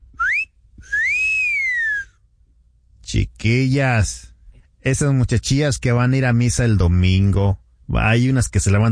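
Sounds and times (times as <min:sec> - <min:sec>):
person whistling two notes: 0:00.1 - 0:02.2
speech: 0:03.1 - 0:08.8.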